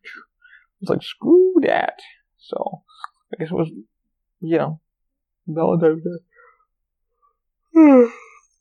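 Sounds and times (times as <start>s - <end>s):
speech: 0.8s - 4.8s, 5.5s - 6.3s, 7.8s - 8.2s
person yawning: 7.7s - 8.4s.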